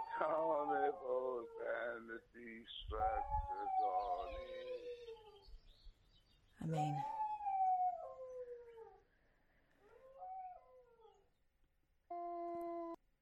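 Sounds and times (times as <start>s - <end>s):
dog howling: 0.0s - 2.0s, 3.0s - 5.4s, 7.0s - 9.0s, 9.8s - 11.2s
speech: 0.2s - 4.9s, 6.6s - 7.2s.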